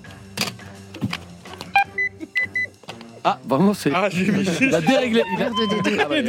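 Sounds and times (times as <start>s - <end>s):
game show electronic buzzer tones: 1.8s - 2.7s
speech: 3.2s - 6.2s
laughter: 3.9s - 6.2s.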